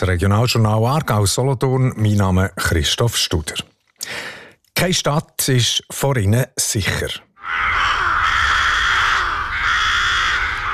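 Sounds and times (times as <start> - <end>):
speech: 0.0 - 8.0
dense chorus of rooks cawing: 7.4 - 10.7.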